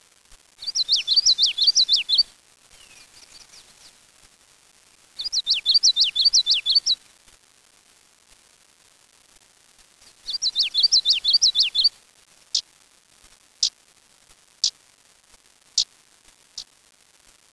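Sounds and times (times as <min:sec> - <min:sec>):
common yellowthroat chanting: 0:00.6 - 0:04.0, 0:05.2 - 0:07.0, 0:10.2 - 0:11.9.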